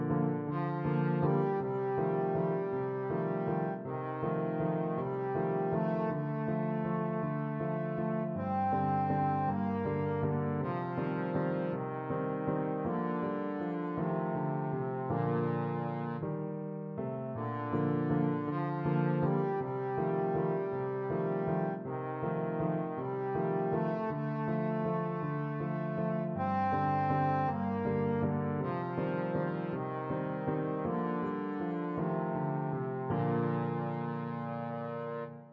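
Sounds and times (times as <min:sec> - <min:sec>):
trombone playing a waltz: 0:00.1 - 0:16.3, 0:17.0 - 0:35.5.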